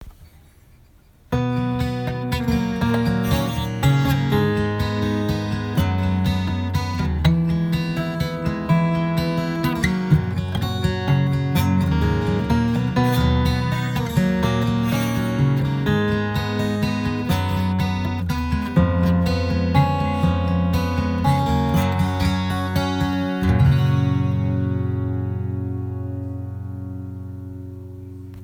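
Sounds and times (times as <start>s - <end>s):
Guild F412 twelve-string acoustic guitar fingerpicked: 1.3s - 28.4s.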